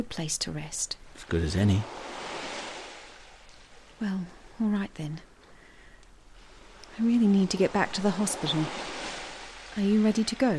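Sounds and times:
speech: 0.0s - 2.1s, 4.0s - 5.3s, 7.0s - 8.9s, 9.8s - 10.5s
waves breaking on a beach: 1.0s - 4.8s, 6.3s - 10.5s.

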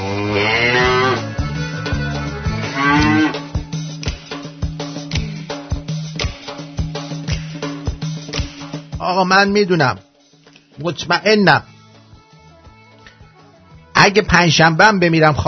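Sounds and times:
cow mooing: 0.0s - 3.6s
rhythmic percussive music: 0.8s - 14.7s
speech: 9.2s - 10.1s, 10.8s - 11.7s, 14.0s - 15.4s.

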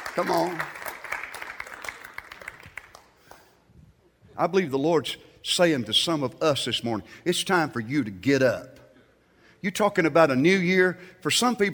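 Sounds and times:
congregation applauding: 0.0s - 3.2s
speech: 0.2s - 0.8s, 4.4s - 8.8s, 9.6s - 11.7s.

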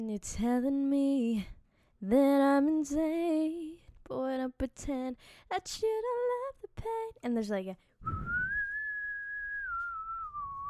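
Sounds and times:
speech: 0.0s - 8.4s
whistle blown: 8.1s - 10.6s.

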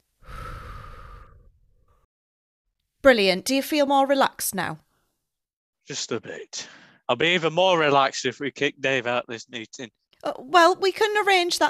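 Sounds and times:
breathing in through the nose and out through the mouth: 0.2s - 2.1s, 4.9s - 5.3s, 6.6s - 7.1s
faint short breath: 0.2s - 2.1s, 6.6s - 7.1s
speech: 3.0s - 4.8s, 5.9s - 11.6s.

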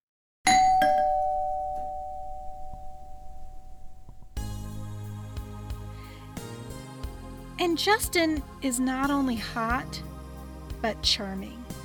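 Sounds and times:
doorbell ringing with two quick chimes: 0.5s - 4.1s
sound: 0.8s - 7.2s
speech: 7.6s - 10.1s, 10.8s - 11.7s.

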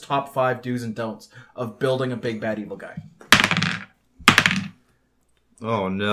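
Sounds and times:
speech: 0.1s - 3.2s, 5.6s - 6.1s
dice rolled on a hard table: 3.3s - 4.8s.

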